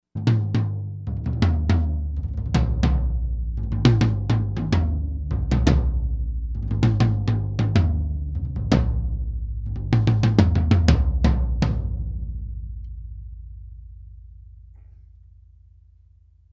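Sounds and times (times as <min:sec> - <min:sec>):
tom drums hit with sticks: 0:00.2 - 0:12.5.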